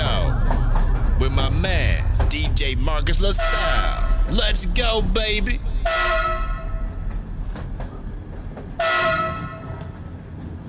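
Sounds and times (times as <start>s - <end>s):
low rumble of a moving train: 0.0s - 10.6s
speech: 1.4s - 6.4s
train horn blasts: 3.4s - 4.1s, 5.8s - 7.2s, 8.8s - 10.0s.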